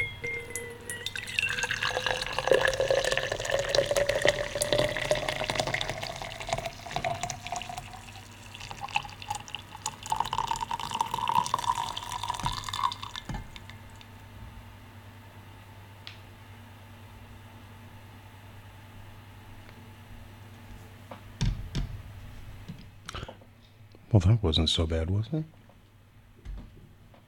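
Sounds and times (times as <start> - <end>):
coffee pouring from a French press into a mug: 0.2 - 14.1
speech: 24.2 - 25.6.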